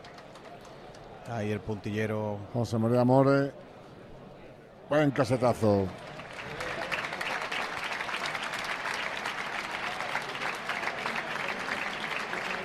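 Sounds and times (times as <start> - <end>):
speech: 1.3 - 3.6, 4.9 - 6.0
large bullring crowd applauding: 5.2 - 12.6.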